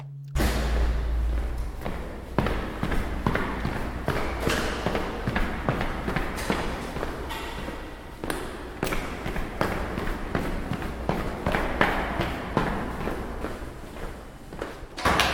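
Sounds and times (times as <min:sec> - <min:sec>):
steady low rumble: 0:00.0 - 0:04.4
hurried heavy footsteps running down a stairwell: 0:00.7 - 0:15.3.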